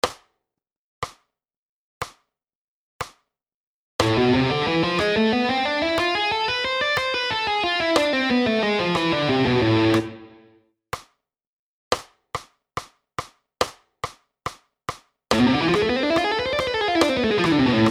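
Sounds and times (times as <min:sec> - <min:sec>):
guitar playing harmonic minor scale: 0:04.0 - 0:10.5, 0:15.3 - 0:17.8.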